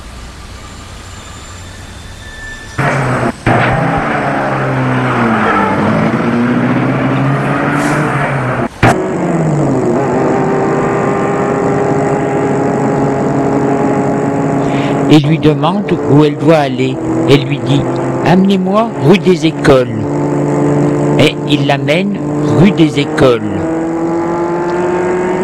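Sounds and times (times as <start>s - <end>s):
car engine humming while driving past: 0.0s - 25.4s
sharp thuds: 2.8s - 4.2s
speech: 15.1s - 20.0s, 21.5s - 23.6s.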